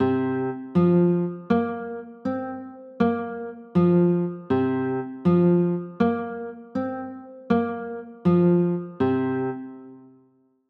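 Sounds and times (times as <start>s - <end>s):
C 7sus4 chords: 0.0s - 10.0s.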